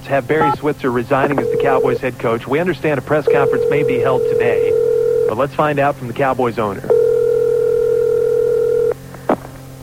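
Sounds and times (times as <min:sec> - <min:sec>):
speech: 0:00.1 - 0:06.9
telephone dial tone while placing a call: 0:01.3 - 0:02.1, 0:03.3 - 0:05.4, 0:06.9 - 0:09.0.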